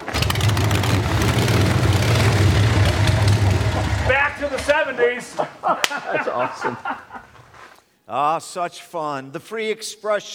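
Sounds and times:
1957 motorcycle built from parts running: 0.0s - 4.7s
laughter: 3.6s - 7.6s
speech: 5.1s - 7.1s, 8.1s - 10.3s.

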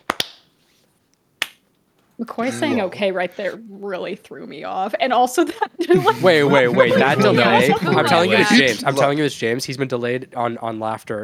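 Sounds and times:
sharp hand claps for audio sync: 0.0s - 0.5s, 1.4s - 1.6s
speech: 2.2s - 11.2s
laughter: 2.4s - 3.5s, 5.4s - 9.2s.

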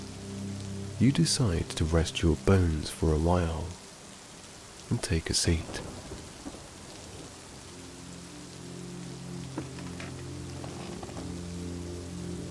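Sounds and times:
steady rain pouring: 0.0s - 12.4s
speech: 1.0s - 3.8s, 4.9s - 6.0s
deep rumble of thunder: 5.6s - 7.4s.

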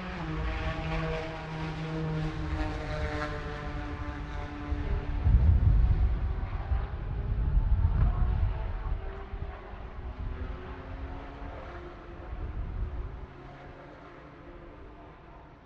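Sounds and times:
deep loud rumble of racing cars passing: 0.0s - 15.6s
racing car engines humming and whining on a race track: 0.0s - 15.6s.

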